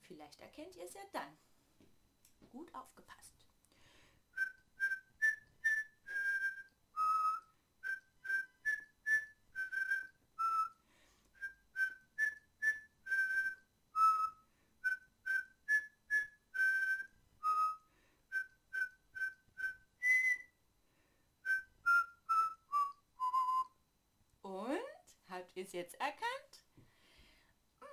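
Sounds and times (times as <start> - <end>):
speech: 0.1 - 1.5, 2.5 - 3.5, 25.6 - 26.7
whistling a melody: 4.3 - 20.6, 21.4 - 23.8.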